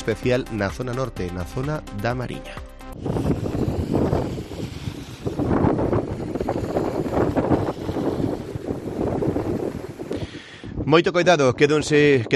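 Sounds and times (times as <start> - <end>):
speech: 0.0 - 3.6, 10.9 - 12.3
strong storm wind gusts buffeting the microphone: 3.0 - 12.3.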